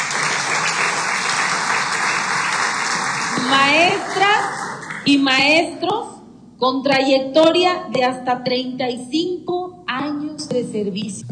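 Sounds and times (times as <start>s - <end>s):
large crowd applauding: 0.0s - 5.1s
speech: 5.1s - 11.2s.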